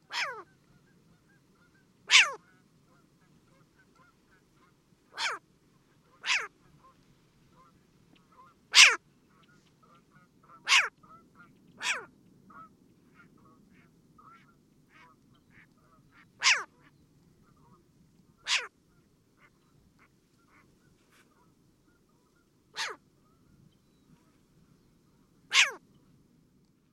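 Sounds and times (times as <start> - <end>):
short-eared owl barking: 0.0 - 0.5, 2.1 - 2.4, 5.2 - 5.4, 6.2 - 6.5, 8.3 - 9.0, 10.5 - 11.2, 11.8 - 13.3, 14.3 - 16.9, 18.4 - 18.7, 22.8 - 23.0, 25.5 - 25.8.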